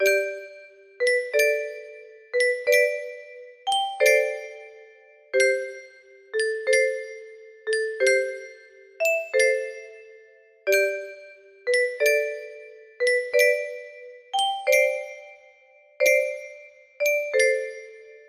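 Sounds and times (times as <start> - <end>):
music box playing a lullaby: 0.0 - 18.2.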